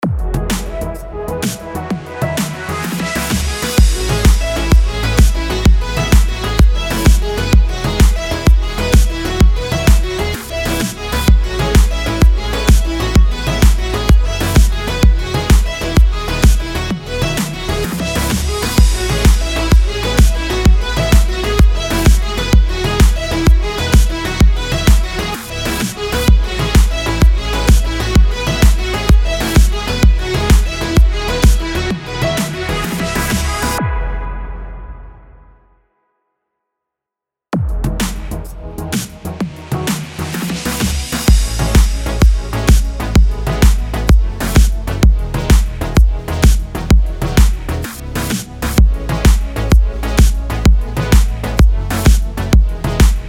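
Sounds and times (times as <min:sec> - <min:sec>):
electronic music in F sharp minor at 128 BPM: 0:00.0 - 0:35.4, 0:37.6 - 0:53.2.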